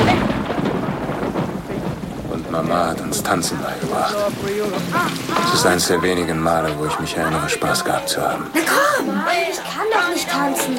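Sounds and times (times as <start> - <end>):
deep rolling thunder rumble: 0.0 - 7.6
steady rain pouring: 0.0 - 10.7
speech: 2.6 - 10.7.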